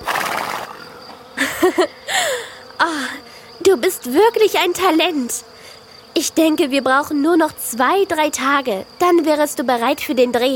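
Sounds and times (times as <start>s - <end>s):
horse neighing: 0.0s - 1.0s
laughter: 1.4s - 2.6s
speech: 1.6s - 5.5s, 6.2s - 10.5s.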